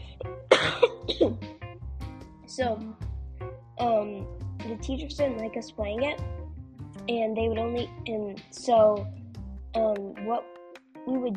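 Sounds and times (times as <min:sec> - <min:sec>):
person clearing throat: 0:00.5 - 0:01.4
person coughing: 0:00.5 - 0:01.4
speech: 0:02.6 - 0:03.0, 0:03.8 - 0:06.4, 0:07.1 - 0:09.2, 0:09.8 - 0:11.3.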